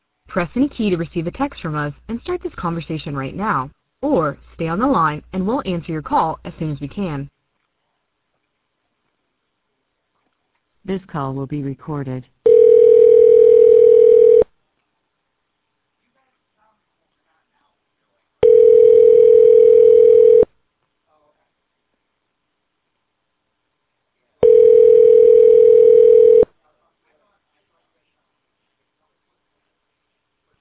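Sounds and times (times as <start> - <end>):
speech: 0.4 - 7.3, 10.8 - 12.4
phone dial tone after call disconnected: 12.5 - 14.5, 18.4 - 20.5, 24.4 - 26.5.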